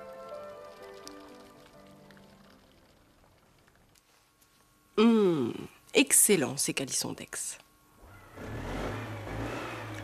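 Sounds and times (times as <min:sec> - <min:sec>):
speech: 0:06.0 - 0:07.6
car engine revving: 0:08.1 - 0:10.0.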